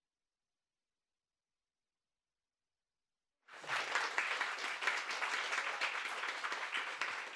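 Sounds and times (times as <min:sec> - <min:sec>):
large live audience applause: 0:03.5 - 0:07.3.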